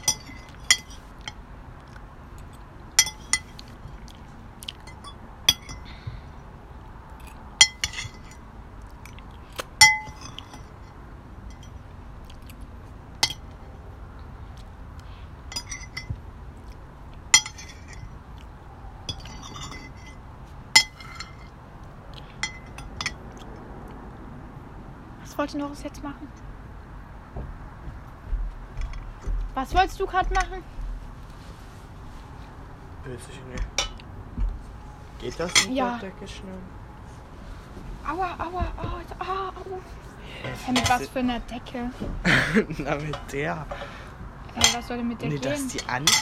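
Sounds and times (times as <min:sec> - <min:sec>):
pots and dishes clinking while carried outside: 0:00.0 - 0:01.0, 0:03.0 - 0:03.6, 0:04.8 - 0:05.9, 0:07.6 - 0:08.4, 0:13.2 - 0:13.6, 0:15.5 - 0:16.2, 0:17.3 - 0:18.1, 0:19.1 - 0:20.2, 0:20.8 - 0:21.5, 0:33.6 - 0:34.0, 0:35.2 - 0:35.9, 0:40.7 - 0:41.1, 0:43.0 - 0:46.2
low steady rumble: 0:00.0 - 0:46.2
speech: 0:25.4 - 0:26.5, 0:29.6 - 0:30.8, 0:33.1 - 0:33.7, 0:35.2 - 0:36.8, 0:38.1 - 0:43.9, 0:44.6 - 0:46.2
laughter: 0:42.2 - 0:43.0.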